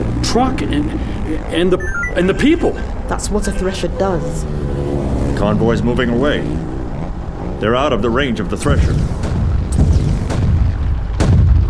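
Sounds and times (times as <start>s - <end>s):
dense rumble of battle noise in a video game: 0.0s - 4.4s, 5.3s - 11.6s
speech: 0.4s - 6.7s, 7.6s - 9.2s
grenade explosions in a video game: 8.6s - 11.6s.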